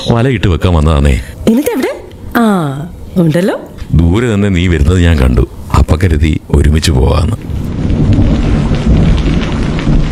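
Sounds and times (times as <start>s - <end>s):
speech: 0.1s - 8.6s
rain starting to fall: 3.9s - 10.0s.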